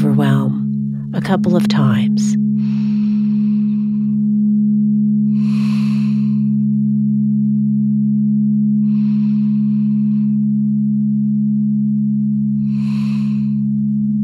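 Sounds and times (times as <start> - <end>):
steady low hum: 0.0 - 14.2
speech: 1.2 - 2.8
soft breathing in and exhaling during a guided meditation: 2.5 - 4.5, 5.3 - 6.9, 8.8 - 10.8, 12.6 - 13.9.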